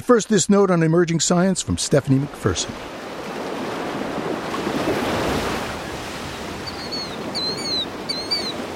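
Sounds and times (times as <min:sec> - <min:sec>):
speech: 0:00.0 - 0:03.0
ocean waves crashing: 0:01.1 - 0:08.7
faint bird calls: 0:05.8 - 0:08.7.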